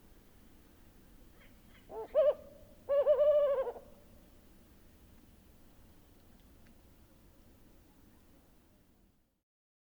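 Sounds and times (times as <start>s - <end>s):
distance calls of another Maghreb wood owl: 1.4s - 4.1s
male Maghreb wood owl compound hooting: 1.9s - 4.0s.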